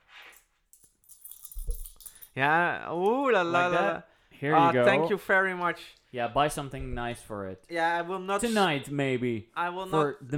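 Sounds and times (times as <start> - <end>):
coins clinking on a table: 0.2 - 2.4
speech: 2.4 - 10.3.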